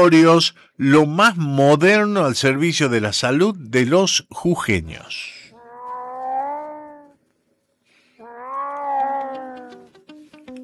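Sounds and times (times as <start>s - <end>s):
speech: 0.0s - 5.3s
cat meowing: 5.5s - 7.2s, 8.2s - 10.1s.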